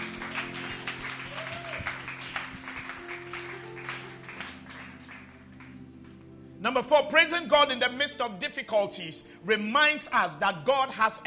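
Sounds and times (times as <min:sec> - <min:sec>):
audience clapping hands in sustained applause: 0:00.0 - 0:06.2
speech: 0:06.6 - 0:11.2.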